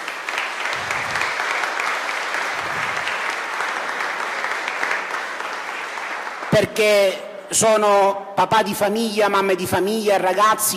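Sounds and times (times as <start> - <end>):
large audience applauding at a feast: 0.0 - 6.6
speech: 6.6 - 10.7.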